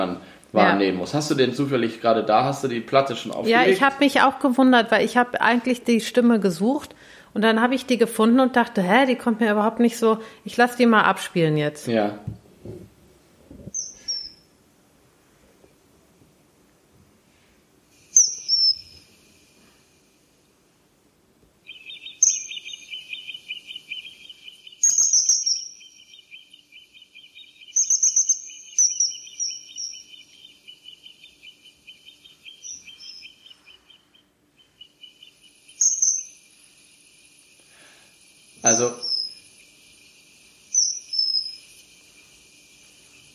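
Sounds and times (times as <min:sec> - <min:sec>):
steady insect-like trill: 0:00.0 - 0:06.8, 0:13.7 - 0:14.6, 0:17.9 - 0:20.5, 0:21.6 - 0:43.3
speech: 0:00.0 - 0:12.9
common kingfisher flying past with shrill piercing whistles: 0:13.7 - 0:14.4, 0:18.2 - 0:19.1, 0:21.7 - 0:33.8, 0:34.8 - 0:36.4, 0:38.6 - 0:39.5, 0:40.7 - 0:41.7.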